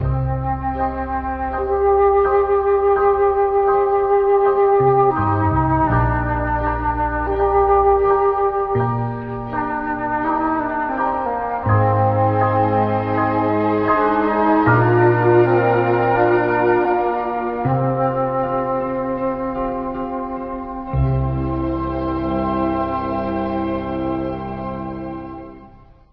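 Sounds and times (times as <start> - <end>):
sad flute: 0.0 - 26.1
sad piano: 0.0 - 26.1
sad strings: 0.0 - 26.1.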